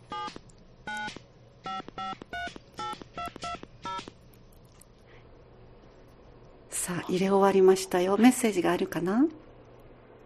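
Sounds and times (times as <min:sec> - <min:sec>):
telephone keypad DTMF beeps while dialing: 0:00.1 - 0:04.1
speech: 0:02.0 - 0:02.4, 0:06.9 - 0:09.4.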